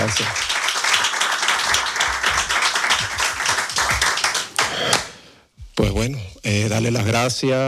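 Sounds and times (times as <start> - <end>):
speech: 0.0 - 0.5, 5.8 - 7.6
audience applause: 0.0 - 5.1.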